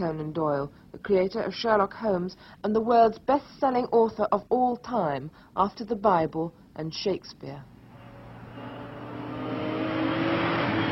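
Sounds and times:
speech: 0.0s - 7.7s
sports car engine droning as it accelerates: 7.8s - 10.8s.

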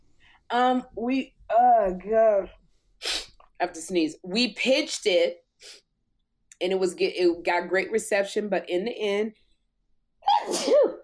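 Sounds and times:
speech: 0.5s - 5.8s, 6.6s - 9.4s, 10.4s - 10.9s
loud sneeze: 10.2s - 11.0s.

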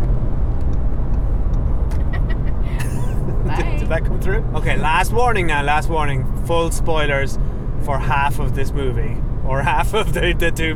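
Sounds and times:
car turn signal indicator ticking inside a moving car: 0.0s - 2.1s
engine and road noise of a moving car: 0.0s - 10.7s
laughter: 2.0s - 5.0s
speech: 3.9s - 10.7s.

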